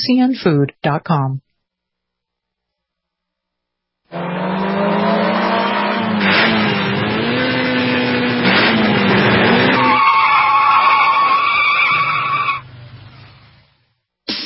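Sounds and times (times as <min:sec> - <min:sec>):
speech: 0:00.0 - 0:01.4
race cars with Honda and Chevrolet engines roaring past: 0:04.1 - 0:13.6
race car tire noise: 0:04.1 - 0:13.8.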